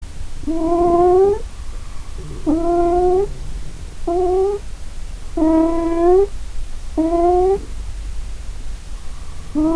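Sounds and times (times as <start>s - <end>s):
low background rumble: 0.0s - 9.7s
cat meowing: 0.5s - 1.4s, 2.2s - 4.6s, 5.4s - 6.3s, 7.0s - 7.7s, 9.6s - 9.7s.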